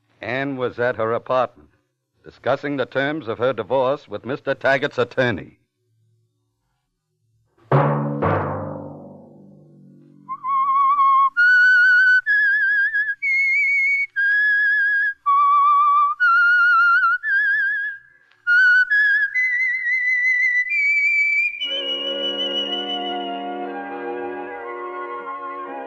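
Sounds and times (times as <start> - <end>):
speech: 0.2 - 5.6
person whistling a slow wavering melody: 10.2 - 23.7
sustained orchestral chord: 21.8 - 25.8.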